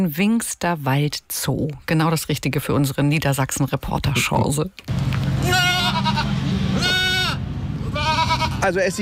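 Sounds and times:
speech: 0:00.0 - 0:06.3, 0:08.6 - 0:09.0
steady outdoor rumble: 0:01.7 - 0:09.0
goats bleating in zoo enclosure: 0:05.3 - 0:09.0.

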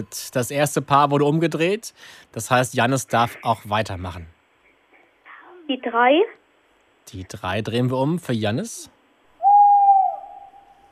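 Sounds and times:
speech: 0:00.0 - 0:04.4, 0:05.7 - 0:06.4, 0:07.1 - 0:09.0
tawny owl hooting: 0:09.4 - 0:10.9.

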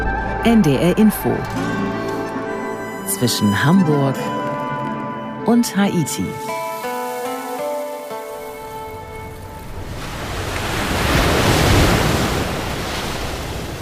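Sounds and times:
sustained musical tones: 0:00.0 - 0:10.6
speech: 0:00.4 - 0:01.8, 0:03.1 - 0:04.5, 0:05.5 - 0:06.6
ocean surf breaking on a beach: 0:06.3 - 0:13.8
loud ocean wave breaking on a beach: 0:06.4 - 0:13.8.

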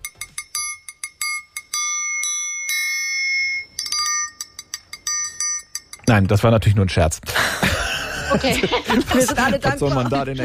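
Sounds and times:
triangle playing a song: 0:00.0 - 0:06.2
speech: 0:06.1 - 0:07.7, 0:08.3 - 0:10.4
laughter: 0:07.3 - 0:10.4.

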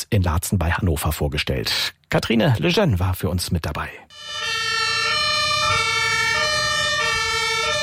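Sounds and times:
speech: 0:00.0 - 0:04.2
ambulance fire brigade and police sirens at a driving safety training ground: 0:04.1 - 0:07.8.

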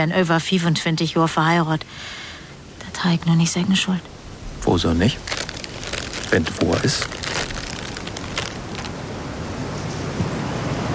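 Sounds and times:
speech: 0:00.0 - 0:02.3, 0:03.0 - 0:05.4, 0:06.3 - 0:07.2
storm wind: 0:00.0 - 0:10.9
heavy storm rain: 0:04.1 - 0:10.9.

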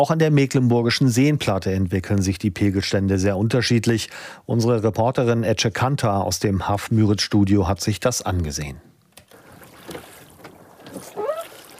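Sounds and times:
speech: 0:00.0 - 0:08.9
angler's oars pulling a rowing boat through dense weed in the Langer See: 0:09.3 - 0:11.7.

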